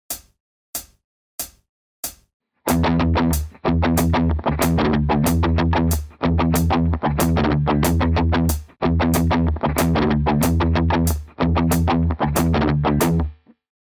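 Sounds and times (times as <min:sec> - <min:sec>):
musical riff: 0:02.7 - 0:13.2.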